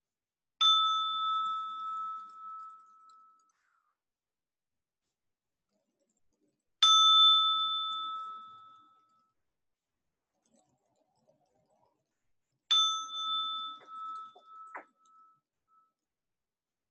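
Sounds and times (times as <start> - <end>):
meditation bell struck to close a meditation: 0.6 - 3.6, 6.8 - 9.4, 12.7 - 15.9.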